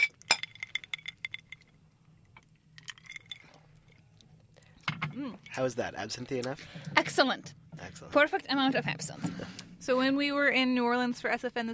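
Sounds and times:
glasses clinking together in a toast: 0.0 - 4.1, 4.8 - 5.8
speech: 5.2 - 11.7.

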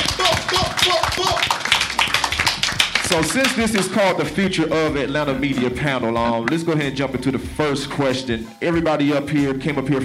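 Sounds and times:
scattered voices and cheers in a crowd: 0.0 - 3.5
crowd applauding: 0.0 - 3.9
speech: 3.1 - 10.0.

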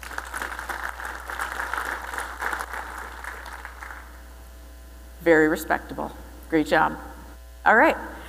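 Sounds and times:
crowd clapping: 0.0 - 4.2
speech: 5.2 - 8.2.

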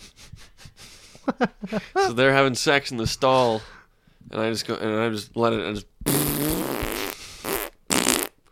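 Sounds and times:
speech: 1.3 - 5.9
voice imitating a wet fart: 6.0 - 8.4.

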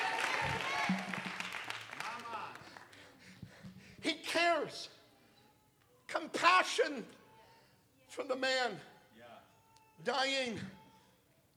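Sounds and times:
crowd clapping their hands unto the Lord: 0.0 - 3.0
speech: 6.6 - 7.2, 8.2 - 8.9, 10.0 - 10.8.

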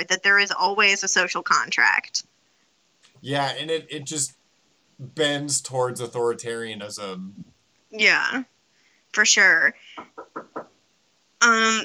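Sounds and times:
speech: 0.0 - 2.3, 3.2 - 4.4, 5.0 - 8.5, 9.1 - 10.7, 11.4 - 11.8
laughter: 3.3 - 4.3, 5.0 - 7.4
knocking on a door: 10.0 - 10.7.

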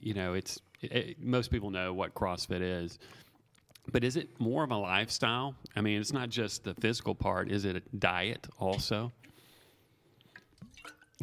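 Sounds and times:
speech: 0.0 - 3.3, 3.9 - 9.3, 10.8 - 11.2
person sipping and gulping water: 3.1 - 4.0, 10.1 - 11.2.

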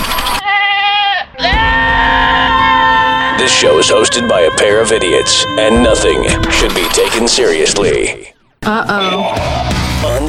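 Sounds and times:
goat bleating: 0.4 - 7.7
speech: 3.4 - 10.2.

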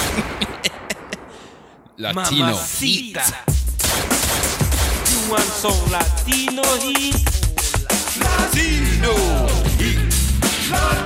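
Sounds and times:
laughter: 0.0 - 1.4
speech: 2.0 - 3.6, 5.3 - 7.4, 8.3 - 11.0
punchy hits of wrestling entrance theme music: 3.5 - 11.0.

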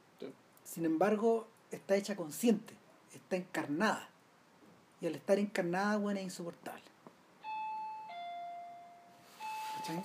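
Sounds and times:
speech: 0.2 - 4.1, 5.0 - 6.9, 9.8 - 10.0
two-tone electronic doorbell chiming ding-dong: 7.4 - 10.0.

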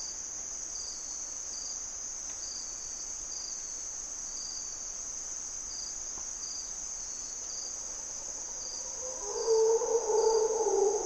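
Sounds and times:
insect chirring in a Costa Rican jungle at dawn: 6.6 - 11.0
Mantled Howler Monkeys roaring in Corcovado jungle: 7.7 - 11.0.

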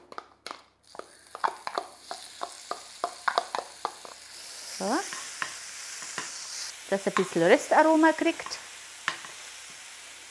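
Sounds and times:
utensil scraping and stirring leeks in a pan: 0.9 - 7.4
leeks frying in a hot pan: 0.9 - 10.2
speech: 4.8 - 5.2, 6.9 - 8.6.

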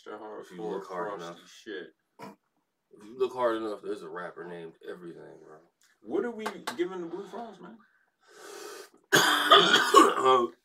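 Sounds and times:
speech: 0.0 - 10.6
soft breathy exhale: 8.2 - 8.9
person in a raspy hacking coughing fit: 9.1 - 10.5.

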